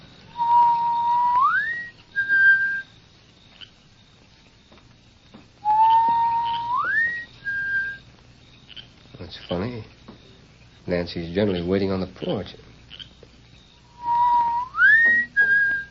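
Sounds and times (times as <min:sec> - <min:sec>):
person whistling a two-part signal call: 0:00.4 - 0:02.9, 0:05.6 - 0:08.0, 0:13.9 - 0:15.8
speech: 0:11.0 - 0:12.7.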